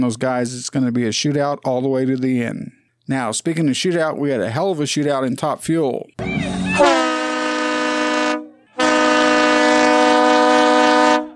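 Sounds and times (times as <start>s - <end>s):
speech: 0.0s - 7.0s
loud train horn blasts in long sustained chords: 6.8s - 11.3s.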